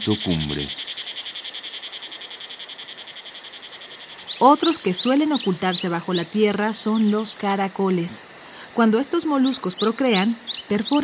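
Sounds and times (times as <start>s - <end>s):
speech: 0.0s - 0.9s, 4.4s - 11.0s
faint hiss: 0.0s - 9.5s
cicadas singing in a high-pitched buzzing chorus: 0.0s - 11.0s.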